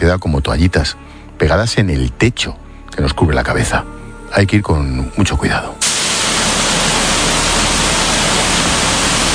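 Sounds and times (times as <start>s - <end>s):
speech: 0.0s - 6.0s
deafening rushing water in a sewer tunnel: 5.8s - 9.3s.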